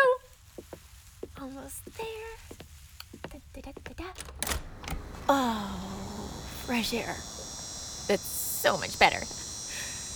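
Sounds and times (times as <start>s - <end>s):
speech: 1.6s - 2.6s, 3.6s - 5.9s, 6.7s - 7.3s, 8.1s - 9.4s
insect buzzing outdoors: 5.0s - 10.1s.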